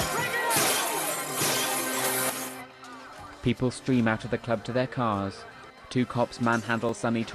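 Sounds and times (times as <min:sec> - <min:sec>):
glasses shattering as police smash them behind a club bar with batons: 0:00.0 - 0:02.6
speech: 0:03.4 - 0:07.3.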